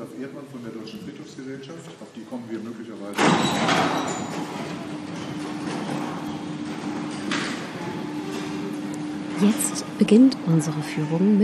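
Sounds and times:
speech: 0.2s - 6.1s, 9.4s - 11.4s
large cemetery gate closing with a grinding metallic rumble: 3.1s - 9.3s.

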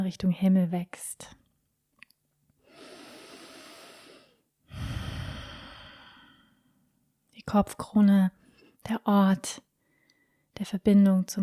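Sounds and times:
speech: 0.0s - 1.4s, 7.4s - 9.7s, 10.6s - 11.4s
deep breathing during a meditation: 2.6s - 6.8s.

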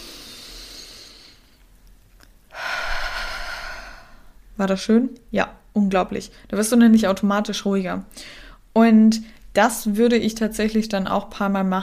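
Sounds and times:
deep breathing in and out into the belly during a relaxation exercise: 0.0s - 1.6s, 2.5s - 4.4s
speech: 4.6s - 11.8s.

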